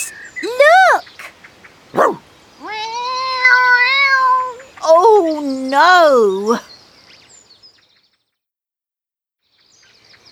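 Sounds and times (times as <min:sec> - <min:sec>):
cat chirping: 0:00.0 - 0:00.6, 0:02.0 - 0:04.8
cat giving a long drawn-out meow: 0:02.0 - 0:04.8
speech: 0:05.8 - 0:06.7.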